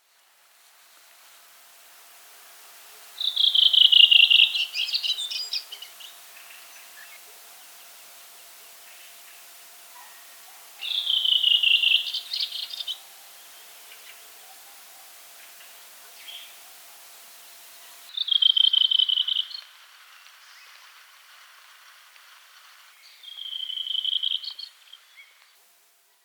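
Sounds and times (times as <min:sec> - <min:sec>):
redwing calling: 0:02.8 - 0:19.5.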